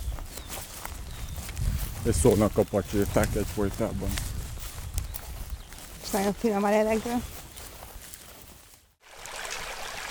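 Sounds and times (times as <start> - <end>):
speech: 2.0 - 4.3, 6.1 - 7.3
babbling stream: 9.0 - 10.0.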